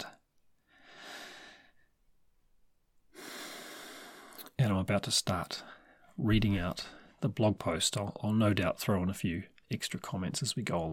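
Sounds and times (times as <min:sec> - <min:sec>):
deep breath: 0:00.6 - 0:02.0, 0:03.1 - 0:04.5
speech: 0:04.6 - 0:10.9.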